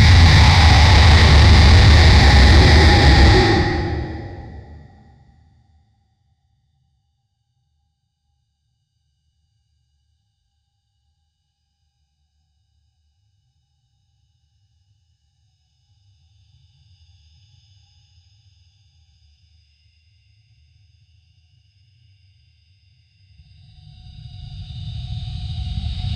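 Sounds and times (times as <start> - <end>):
long dragon roar: 0.1 - 4.7.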